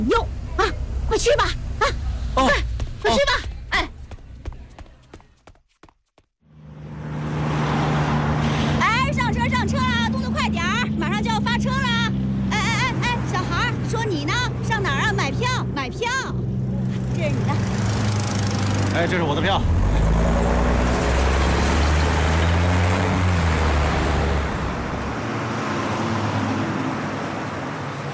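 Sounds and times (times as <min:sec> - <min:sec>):
speech: 0:00.0 - 0:03.3
bus engine rumbling at a bus station: 0:00.0 - 0:04.8, 0:06.5 - 0:28.1.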